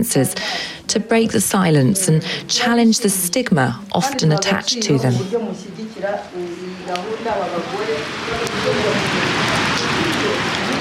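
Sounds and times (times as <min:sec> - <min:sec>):
speech: 0:00.0 - 0:09.6
indistinct voices talking: 0:00.0 - 0:10.7
rain drumming on a hall roof: 0:06.2 - 0:10.7.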